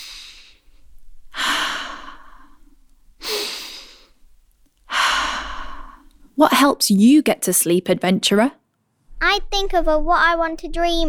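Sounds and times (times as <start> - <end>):
slow deep breathing in a sleepy breathing exercise: 0.0 - 6.3
speech: 6.4 - 8.6, 9.2 - 11.0.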